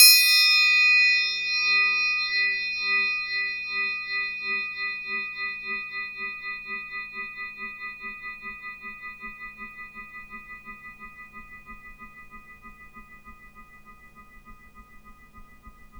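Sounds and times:
cartoon triangle effect: 0.0 - 5.2.

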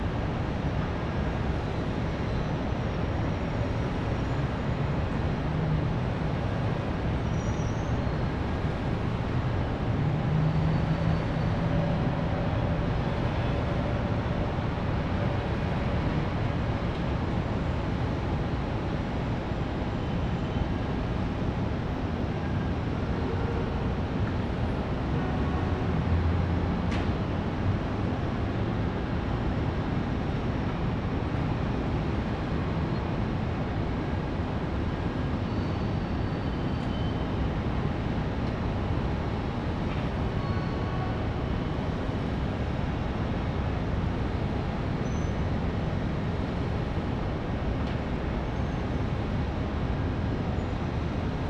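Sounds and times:
distant city traffic: 0.0 - 51.4.

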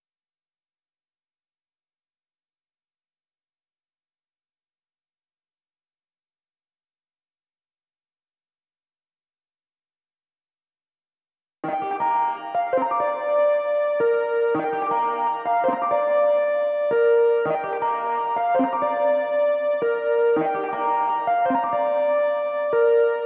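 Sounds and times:
lead melody in G minor: 11.6 - 23.2.

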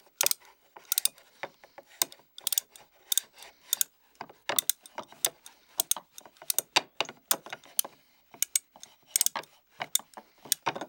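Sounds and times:
toy winding up: 0.2 - 1.3, 1.9 - 3.9, 4.6 - 6.7, 7.3 - 10.7.

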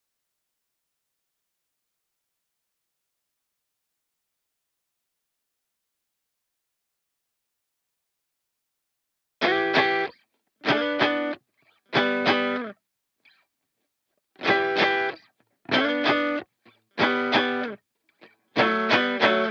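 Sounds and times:
guitar harmonies in G major at 95 BPM: 9.4 - 11.4, 12.0 - 12.7, 14.4 - 17.8, 18.6 - 19.4.

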